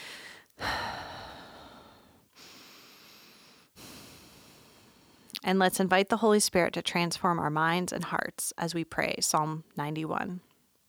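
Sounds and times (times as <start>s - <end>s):
slow deep breaths during a guided prayer: 0.0s - 5.4s
speech: 5.4s - 10.5s.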